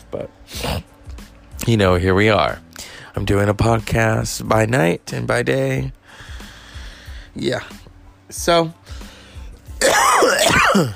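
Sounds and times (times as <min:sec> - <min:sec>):
speech: 0:00.1 - 0:00.9, 0:01.6 - 0:02.6, 0:03.2 - 0:06.3, 0:07.4 - 0:08.9, 0:10.8 - 0:10.9
harsh gravelly cough or throat clear: 0:09.8 - 0:10.9.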